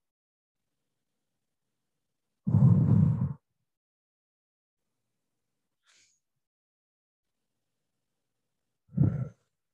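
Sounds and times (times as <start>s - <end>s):
deep breathing during a guided relaxation exercise: 2.4s - 3.4s, 8.9s - 9.6s.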